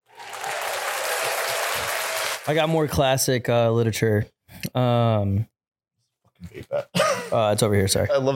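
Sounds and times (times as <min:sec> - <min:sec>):
crowd applause sound effect: 0:00.0 - 0:02.8
speech: 0:02.4 - 0:05.5, 0:06.4 - 0:08.3.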